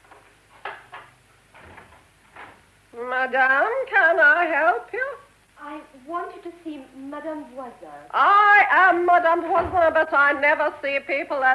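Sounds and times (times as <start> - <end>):
door rattling and scraping as it swings open: 0.0 - 2.6
speech: 3.2 - 11.5.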